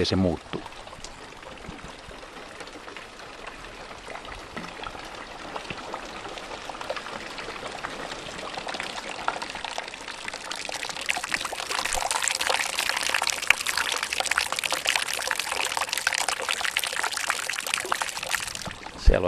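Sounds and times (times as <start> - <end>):
speech: 0.0 - 0.6
rainwater trickling down a rain gutter into a bucket: 0.0 - 19.2.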